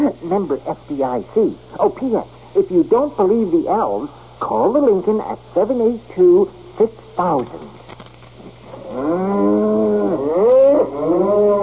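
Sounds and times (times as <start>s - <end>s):
speech: 0.0s - 7.8s, 9.0s - 9.3s
cow mooing: 8.8s - 11.6s.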